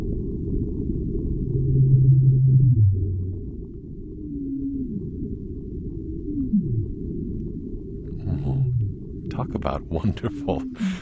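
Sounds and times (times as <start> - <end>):
steady rumbling underwater background: 0.0 - 10.8
sped-up blue whale call with low droning tonal moans: 1.4 - 9.1
speech: 9.6 - 11.0.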